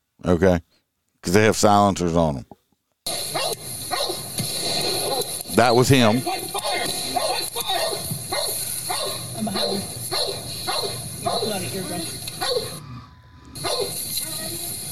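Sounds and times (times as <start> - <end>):
speech: 0.2 - 2.6, 5.6 - 6.4
agitated police dog barking furiously: 3.3 - 4.3, 7.1 - 11.8, 12.4 - 12.8, 13.6 - 14.0.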